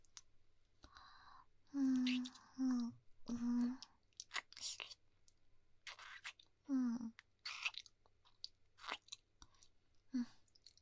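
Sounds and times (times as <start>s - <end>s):
mouth sounds imitating biting and chewing: 1.9s - 6.5s, 7.2s - 9.7s.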